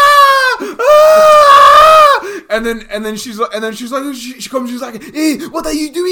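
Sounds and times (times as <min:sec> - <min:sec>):
person imitating a small child screaming and crying in fright: 0:00.0 - 0:02.2
speech: 0:02.6 - 0:06.0.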